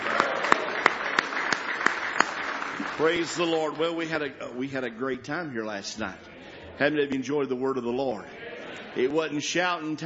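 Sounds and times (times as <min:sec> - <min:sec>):
congregation clapping hands in praise at a morning church service: 0:00.0 - 0:04.4
speech: 0:03.0 - 0:08.4, 0:09.0 - 0:10.0.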